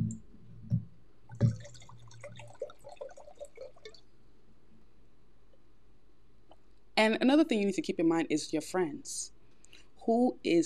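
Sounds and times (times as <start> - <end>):
drink pouring into a glass: 1.4 - 4.1
speech: 7.0 - 9.4, 10.0 - 10.6.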